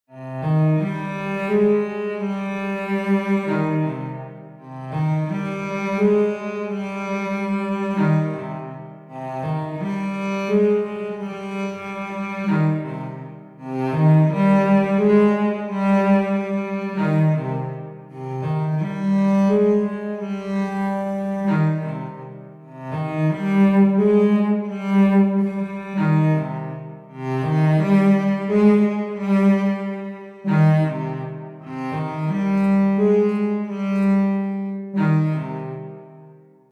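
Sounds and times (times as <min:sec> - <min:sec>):
emotional cello: 0:00.0 - 0:36.7.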